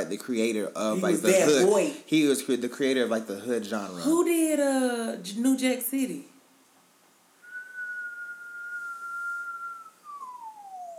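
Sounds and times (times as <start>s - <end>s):
speech: 0.1s - 6.3s
person whistling a long note sliding down in pitch: 7.4s - 10.9s.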